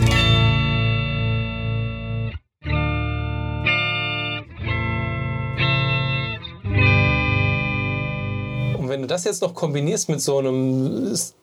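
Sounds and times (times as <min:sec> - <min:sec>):
electric guitar through an organ-like effect playing sustained chords: 0:00.0 - 0:08.8
speech: 0:09.0 - 0:11.4.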